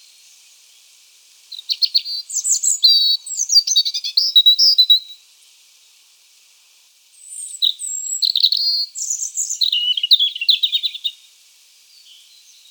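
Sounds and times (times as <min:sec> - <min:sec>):
European robin warbling song: 0:01.5 - 0:05.1, 0:07.2 - 0:11.2
speech: 0:03.6 - 0:03.8.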